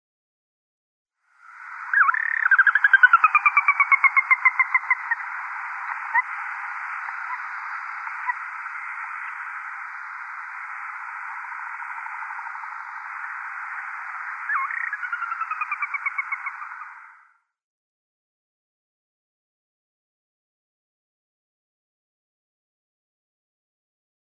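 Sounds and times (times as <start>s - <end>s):
Sora calls: 1.5s - 17.2s.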